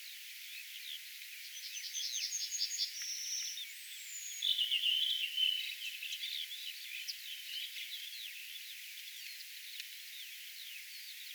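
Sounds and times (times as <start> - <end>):
Redwing singing high thin whistled notes: 1.7 - 6.3.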